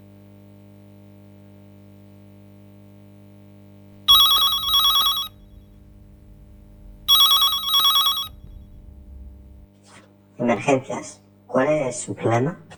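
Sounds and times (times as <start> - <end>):
telephone line ringing on a call to an emergency number: 4.1 - 5.7, 6.9 - 8.7
person talking: 10.4 - 12.7.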